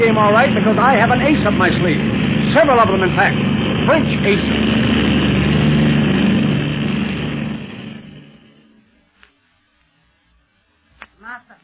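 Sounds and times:
speech: 0.0s - 4.9s
propeller plane engine droning while climbing in flight: 0.0s - 9.1s.

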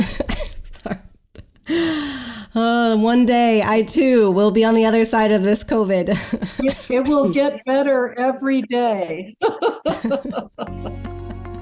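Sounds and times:
person ill with COVID coughing: 0.0s - 0.6s
speech: 1.7s - 11.1s
laughter: 9.4s - 11.6s.

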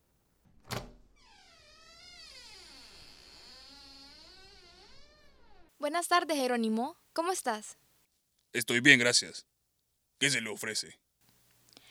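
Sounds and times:
door hinges creaking: 0.7s - 5.7s
speech: 5.8s - 7.8s, 8.5s - 9.5s, 10.2s - 11.0s.

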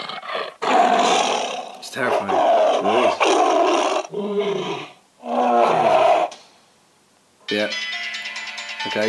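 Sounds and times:
tiger roaring: 0.0s - 6.4s
speech: 2.0s - 3.0s.

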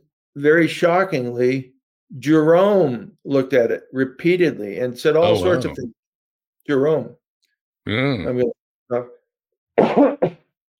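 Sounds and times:
speech: 0.4s - 6.0s, 6.7s - 7.2s, 7.8s - 9.2s
person coughing harshly: 9.8s - 10.5s
short voiced throat clearing: 9.8s - 10.5s.

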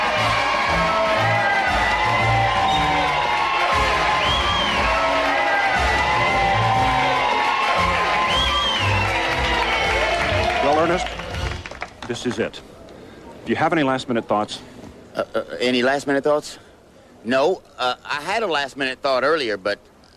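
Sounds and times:
dense crowd cheering and whooping: 0.0s - 11.6s
speech: 12.1s - 12.8s, 13.5s - 19.9s.

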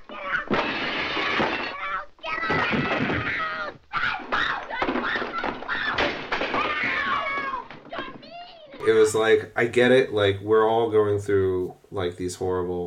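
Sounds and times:
shrill cat-like shrieks: 0.1s - 8.4s
tables tipped over and objects breaking: 0.3s - 8.4s
speech: 8.9s - 12.8s.

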